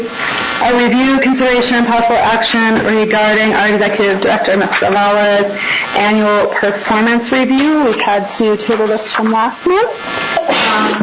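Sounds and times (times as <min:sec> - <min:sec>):
speech: 0:00.0 - 0:11.0
person sneezing during a public meeting session: 0:10.4 - 0:11.0.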